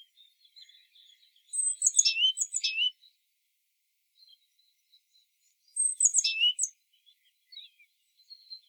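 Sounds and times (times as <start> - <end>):
great tit Parus major calls: 1.5 - 3.0, 5.7 - 6.8.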